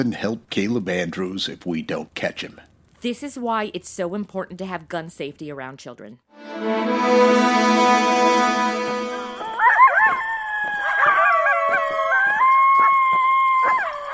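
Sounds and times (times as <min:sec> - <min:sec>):
speech: 0:00.0 - 0:08.6
steady droning tone: 0:06.6 - 0:09.7
pack of coyotes howling and yipping: 0:09.4 - 0:14.1.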